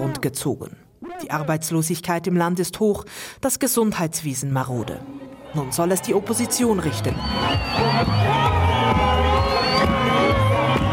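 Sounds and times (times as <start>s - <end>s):
speech: 0.1s - 9.2s
crowd in a village in Zimbabwe cheering and shouting as the opposition leader arrives: 5.0s - 10.9s.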